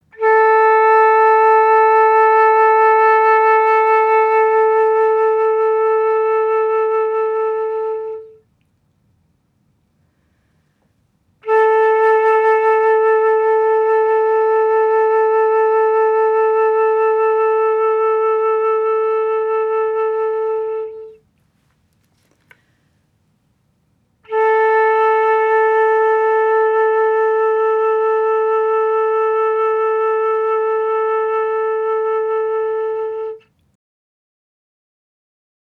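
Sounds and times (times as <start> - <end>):
flute tuning: 0.1 - 8.4, 11.4 - 21.2, 24.3 - 33.4.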